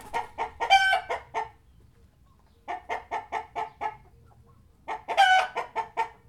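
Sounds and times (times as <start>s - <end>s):
chickens clucking: 0.0s - 6.2s.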